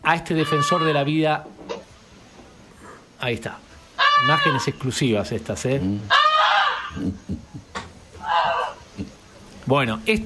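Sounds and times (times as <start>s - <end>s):
speech: 0.1s - 1.6s, 3.2s - 6.2s, 6.9s - 7.5s, 9.7s - 10.2s
pet goose honking: 0.3s - 1.1s, 4.0s - 4.7s, 6.1s - 7.0s, 8.2s - 8.8s.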